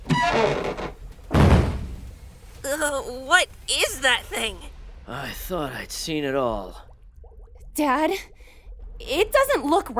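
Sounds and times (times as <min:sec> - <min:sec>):
crate being taken off something with heavy dull thunks: 0:01.1 - 0:02.1
speech: 0:02.8 - 0:06.9, 0:07.8 - 0:08.3, 0:09.0 - 0:09.9.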